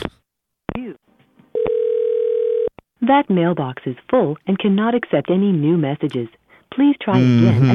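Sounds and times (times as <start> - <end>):
steady continuous tone on a telephone line: 1.6 - 2.7
speech: 3.1 - 7.7.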